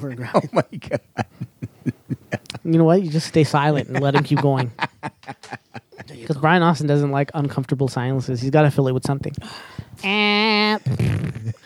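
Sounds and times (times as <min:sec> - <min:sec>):
speech: 0:00.0 - 0:01.4, 0:02.7 - 0:04.8, 0:06.3 - 0:11.1
short burst of voiced talk or laughter: 0:00.0 - 0:06.7, 0:10.4 - 0:11.6
man imitating a fart with a loud buzzy mouth noise: 0:10.8 - 0:11.6.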